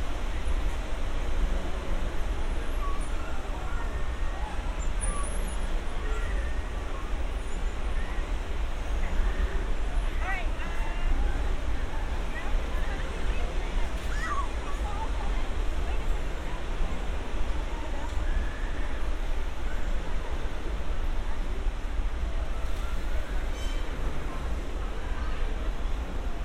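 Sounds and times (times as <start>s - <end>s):
outdoor crowd babble near a busy pier: 0.0s - 26.4s.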